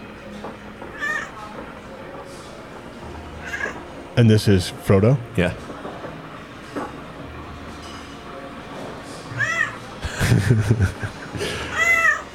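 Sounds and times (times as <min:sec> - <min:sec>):
cat meowing for food: 0:00.9 - 0:01.4, 0:03.4 - 0:03.8, 0:09.3 - 0:09.8, 0:11.7 - 0:12.3
speech: 0:04.2 - 0:05.6, 0:10.5 - 0:11.6
laughter: 0:10.0 - 0:12.0.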